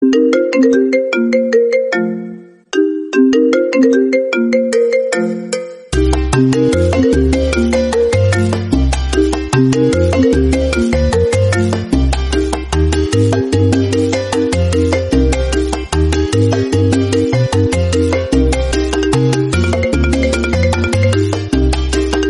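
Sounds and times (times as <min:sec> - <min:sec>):
iPhone 6 salsa ringtone: 0:00.0 - 0:22.2.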